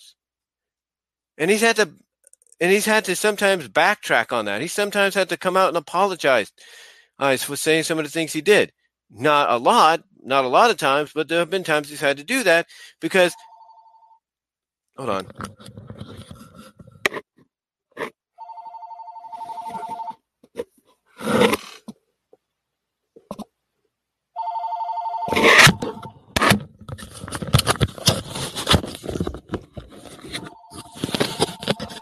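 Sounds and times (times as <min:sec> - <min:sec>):
speech: 0:01.4 - 0:02.0, 0:02.6 - 0:13.5, 0:15.0 - 0:16.2
telephone ringing in electronic tone bursts: 0:13.3 - 0:14.2, 0:18.4 - 0:20.2, 0:24.4 - 0:26.3, 0:30.3 - 0:32.0
rustling, scraping and handling noises on the microphone: 0:15.0 - 0:17.3, 0:19.3 - 0:22.0, 0:25.3 - 0:32.0.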